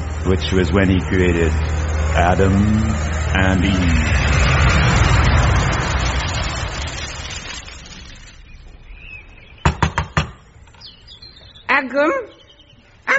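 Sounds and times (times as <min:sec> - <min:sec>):
broad rumbling noise: 0:00.0 - 0:09.8
speech: 0:00.2 - 0:04.3
sharp knocks on a door: 0:09.6 - 0:10.4.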